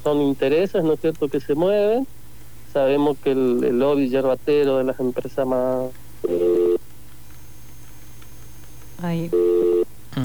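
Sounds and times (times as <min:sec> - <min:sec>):
speech: 0:00.0 - 0:02.2, 0:02.8 - 0:06.6, 0:09.0 - 0:10.2
telephone call-waiting tones on a phone line: 0:06.2 - 0:06.8, 0:08.6 - 0:09.9.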